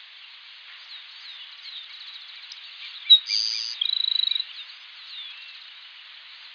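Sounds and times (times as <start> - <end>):
faint insect hiss: 0.0 - 6.5
Grassland sparrow Ammodramus humeralis song with buzzy tone and dry trill: 2.5 - 4.6.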